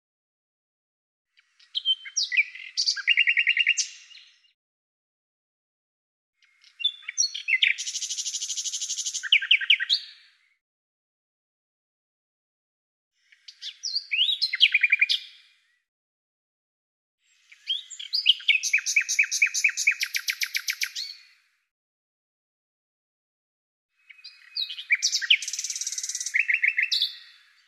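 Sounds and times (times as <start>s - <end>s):
bird singing sharp chirps buzzy trills and rapid repeated notes: 1.4s - 4.5s, 6.4s - 10.4s, 13.3s - 15.4s, 17.3s - 21.3s, 24.0s - 27.6s.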